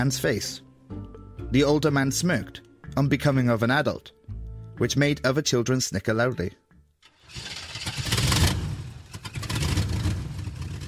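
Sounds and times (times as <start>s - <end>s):
speech: 0.0s - 4.2s, 4.8s - 6.6s
truck engine turning over and revving: 7.0s - 10.8s.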